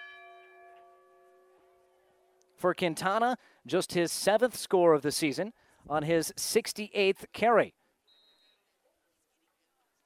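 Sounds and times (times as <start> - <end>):
bell ringing at a high school football game in Elm Creek: 0.0 - 1.8
speech: 2.6 - 7.8.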